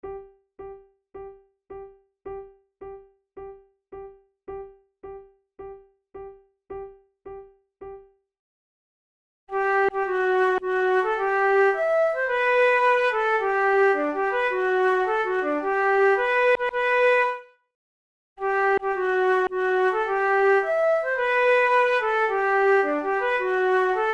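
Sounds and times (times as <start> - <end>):
march duet: 9.5 - 17.4, 18.4 - 24.1.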